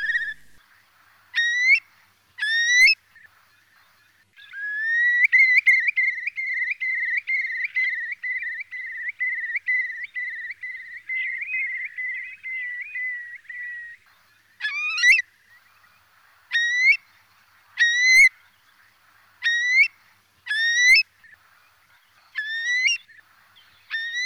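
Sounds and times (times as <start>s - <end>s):
Eurasian curlew giving rising whistled calls: 0.0s - 0.6s, 1.3s - 3.6s, 4.4s - 14.0s, 14.6s - 15.6s, 16.5s - 17.1s, 17.8s - 18.3s, 19.4s - 21.4s, 22.2s - 24.2s.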